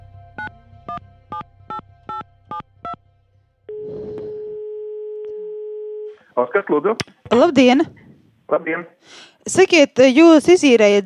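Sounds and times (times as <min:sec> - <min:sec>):
continuous telephone line tone: 0:03.7 - 0:06.3
speech: 0:06.4 - 0:11.0.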